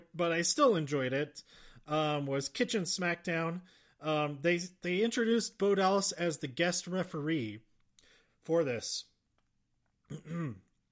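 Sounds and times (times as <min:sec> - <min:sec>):
speech: 0:00.2 - 0:07.7, 0:08.4 - 0:09.1, 0:10.1 - 0:10.6
stifled cough or throat-clear: 0:10.1 - 0:10.7.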